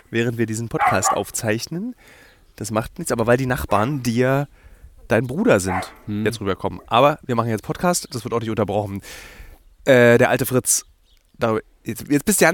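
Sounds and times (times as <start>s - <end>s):
speech: 0.1s - 12.5s
dog barking: 0.8s - 1.3s, 5.6s - 6.1s.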